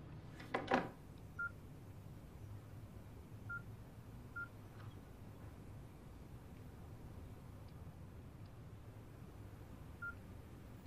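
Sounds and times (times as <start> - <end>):
low hum: 0.0 - 10.8
telephone keypad dialing tones: 10.0 - 10.2.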